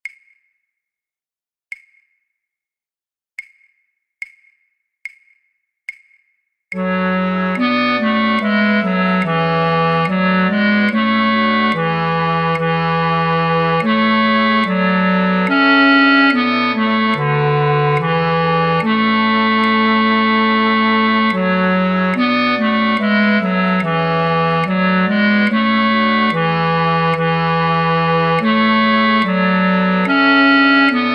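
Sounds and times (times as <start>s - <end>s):
bass flute: 6.8s - 31.1s.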